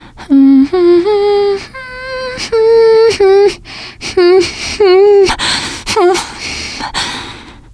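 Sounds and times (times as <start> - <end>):
teen girl humming nervously: 0.0 - 7.6.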